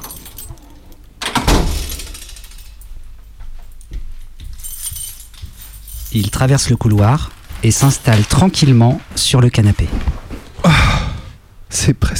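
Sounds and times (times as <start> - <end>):
door latch clacking and rattling as the door swings open: 0.0 - 2.8
keys jingling: 0.0 - 9.1
speech: 6.2 - 10.2, 11.7 - 12.1.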